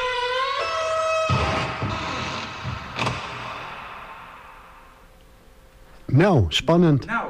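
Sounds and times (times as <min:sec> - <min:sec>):
large metal warehouse door screeching and rolling open: 0:00.0 - 0:04.7
speech: 0:06.2 - 0:07.2.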